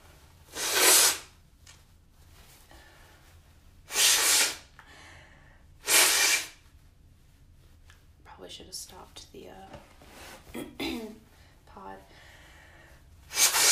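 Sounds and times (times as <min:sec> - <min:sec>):
person blowing nose: 0:00.5 - 0:01.4, 0:03.9 - 0:04.7, 0:05.8 - 0:06.6, 0:13.3 - 0:13.7
speech: 0:08.5 - 0:11.1.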